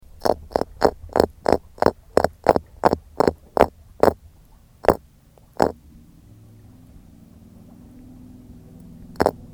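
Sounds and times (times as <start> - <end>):
Orthopristis chrysoptera grunting: 0.2 - 4.2, 4.8 - 5.8, 9.2 - 9.4.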